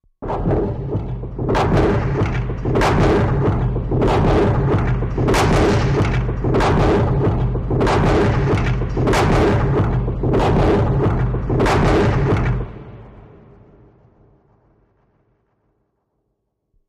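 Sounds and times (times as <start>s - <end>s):
deep rig machine: 0.2s - 13.4s.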